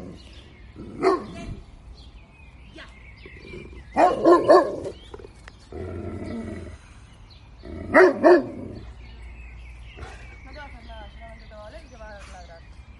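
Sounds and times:
dog barking: 1.0 - 1.4, 4.0 - 5.0, 7.9 - 8.6.

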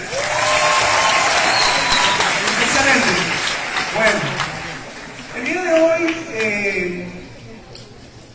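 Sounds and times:
audience applause: 0.0 - 6.8.

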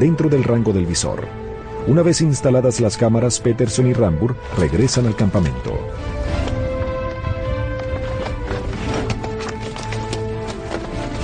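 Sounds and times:
speech: 0.0 - 6.5
steady sound: 0.0 - 11.2
horse hooves clopping over rough terrain: 6.4 - 11.2.

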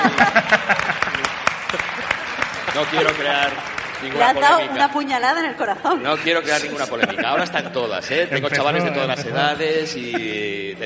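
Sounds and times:
laughter: 0.0 - 3.6, 5.9 - 10.8
audience applauding: 0.0 - 5.3
speech: 2.9 - 10.8.

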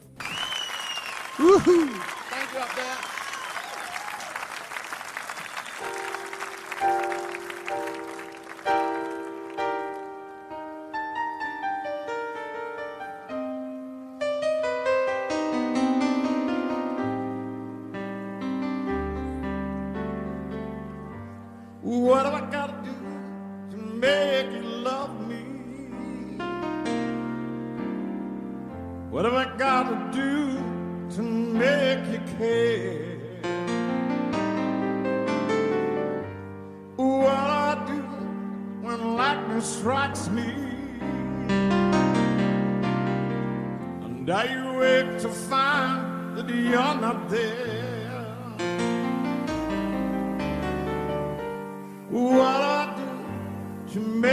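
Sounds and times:
concert crowd cheering and applause: 0.0 - 10.4
slow piano-led song performed live: 4.0 - 54.3.

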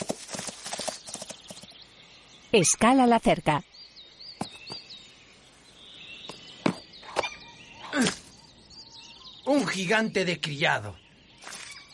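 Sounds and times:
horse hooves galloping: 0.0 - 1.8
speech: 2.5 - 3.7, 9.6 - 11.0.

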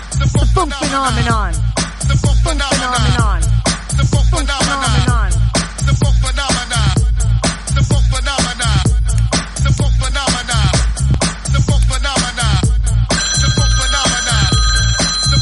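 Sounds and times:
loud pulsing dance music on a radio phone-in: 0.0 - 15.4
bright steady electronic telephone ring of an incoming call: 13.1 - 15.4.

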